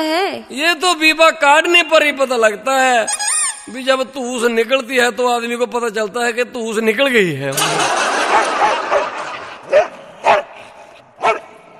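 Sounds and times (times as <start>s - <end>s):
speech: 0.0s - 9.1s
laughter: 7.5s - 9.7s
dog yipping and barking: 8.3s - 10.6s, 11.2s - 11.6s.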